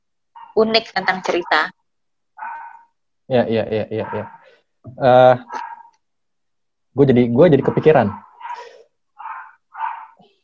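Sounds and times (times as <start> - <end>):
pet dog giving a sharp bark with a trailing yelp: 0.4 - 0.6, 2.4 - 2.9, 3.9 - 4.4, 5.4 - 6.0, 7.6 - 10.3
speech: 0.6 - 1.8, 3.3 - 5.7, 7.0 - 8.7.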